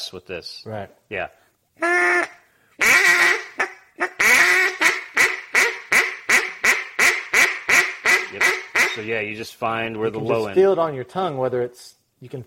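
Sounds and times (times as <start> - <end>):
speech: 0.0 - 2.4, 8.3 - 12.4
hen mallard quacks blown on duck call: 1.8 - 9.1.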